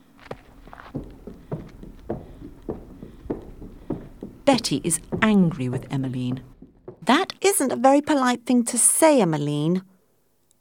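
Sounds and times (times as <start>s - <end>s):
big black horse hooves clip-clopping at a walking pace: 0.0s - 8.4s
speech: 4.5s - 6.5s, 7.1s - 9.9s.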